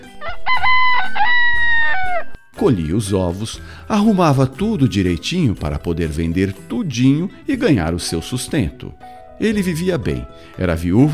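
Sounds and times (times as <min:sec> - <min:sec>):
rooster crowing: 0:00.1 - 0:02.4
speech: 0:02.6 - 0:11.1.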